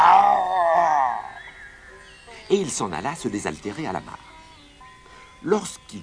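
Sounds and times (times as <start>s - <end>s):
person imitating a tiger practising its roar: 0.0s - 1.4s
speech: 2.5s - 4.3s, 5.4s - 6.0s.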